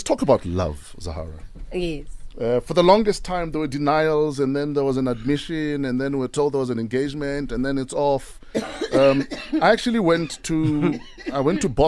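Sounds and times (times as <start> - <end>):
speech: 0.0 - 11.8
guest coughing: 8.6 - 11.8
throat clearing: 8.6 - 11.8.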